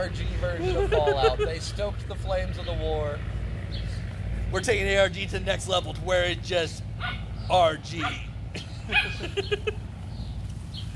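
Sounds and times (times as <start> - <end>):
speech: 0.0 - 3.8, 4.5 - 9.8
laughter: 0.4 - 1.9, 8.5 - 9.9
small dog yelping and yipping: 8.0 - 8.3.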